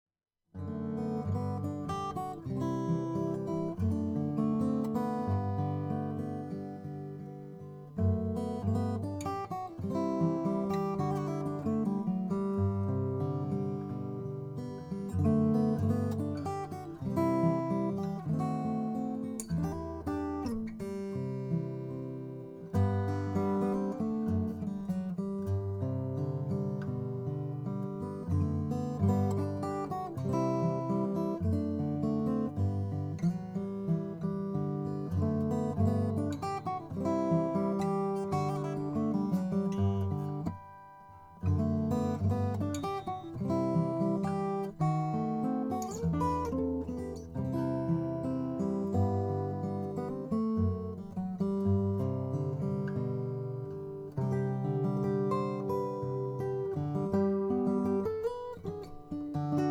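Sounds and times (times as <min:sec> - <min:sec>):
Traugott 00 Brazilian rosewood acoustic guitar: 0:00.5 - 0:59.7.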